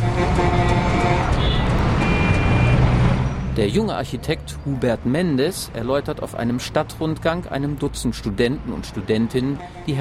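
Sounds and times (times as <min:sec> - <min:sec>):
city traffic jam with cars and trucks: 0:00.0 - 0:09.9
speech: 0:03.6 - 0:09.9.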